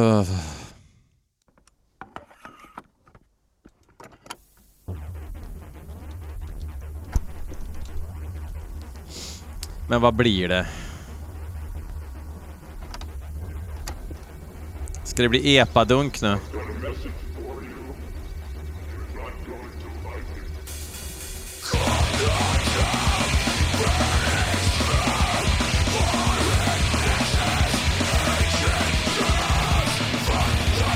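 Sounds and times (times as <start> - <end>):
speech: 0.0 - 0.6, 9.9 - 10.8, 15.2 - 17.2
drums in a hardcore metal song: 3.8 - 30.9
distorted guitars in a hardcore metal song: 4.4 - 30.9
harsh screamed vocals in a hardcore metal song: 21.6 - 30.9.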